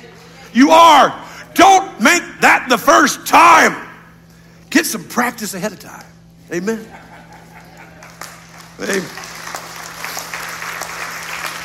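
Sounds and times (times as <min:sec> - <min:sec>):
speech: 0:00.5 - 0:03.8, 0:04.7 - 0:07.0, 0:08.8 - 0:09.3
laughter: 0:06.6 - 0:09.0
audience applause: 0:07.8 - 0:11.6.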